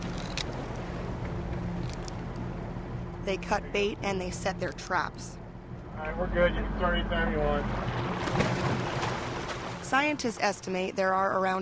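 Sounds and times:
boat motor droning at a low pitch on Lake Tahoe: 0.0 - 11.3
wind: 0.0 - 11.5
speech: 3.3 - 5.4, 6.0 - 8.5, 9.9 - 11.5
rushing water: 7.6 - 10.1.

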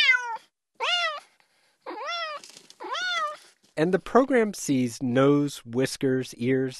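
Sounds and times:
cat meowing: 0.0 - 3.5
speech: 3.8 - 6.7.

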